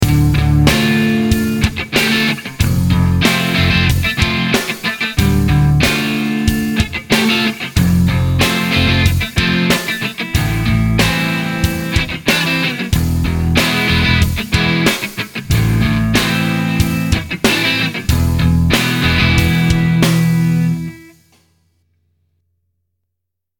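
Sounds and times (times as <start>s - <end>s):
clean electric guitar through a tube amplifier: 0.0s - 21.2s.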